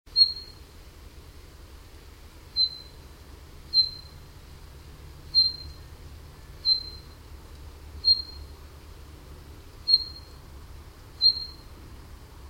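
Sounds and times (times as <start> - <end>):
common chaffinch Fringilla coelebs calls: 0.1 - 0.7, 2.5 - 4.4, 5.3 - 7.3, 8.0 - 8.7, 9.8 - 10.5, 11.1 - 11.8
steady low hum: 0.1 - 12.4.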